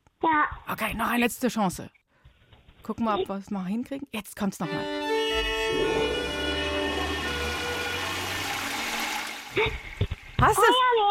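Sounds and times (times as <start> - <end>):
speech: 0.3 - 2.0, 2.8 - 6.6, 9.6 - 11.0
short vocal sounds: 5.3 - 7.8
toilet flushing: 5.3 - 10.8.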